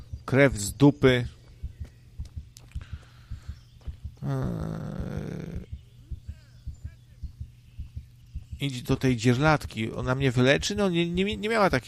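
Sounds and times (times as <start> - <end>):
steady heartbeat thumping: 0.0 - 11.8
speech: 0.3 - 1.4, 4.3 - 4.8, 8.6 - 11.8.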